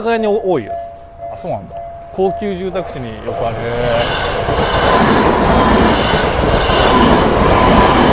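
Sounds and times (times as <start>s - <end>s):
speech: 0.0s - 0.8s, 1.4s - 7.1s
train rumbling past a railroad crossing: 0.6s - 8.1s
train wheels clattering on rails: 2.6s - 8.1s.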